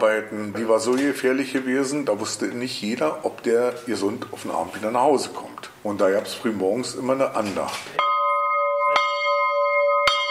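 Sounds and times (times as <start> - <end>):
speech: 0.0 - 8.1
prayer house bell of a quarry ringing: 8.0 - 10.2.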